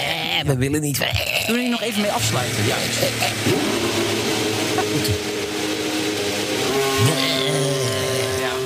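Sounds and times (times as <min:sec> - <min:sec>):
speech: 0:00.4 - 0:05.6
AlphaTauri Formula 1 race car engine idling: 0:02.2 - 0:08.6.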